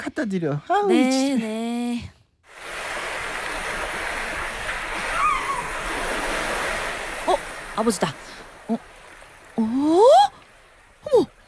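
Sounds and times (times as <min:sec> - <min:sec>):
speech: 0:00.1 - 0:02.2, 0:07.8 - 0:08.9
ocean waves washing against the seashore: 0:02.5 - 0:11.4.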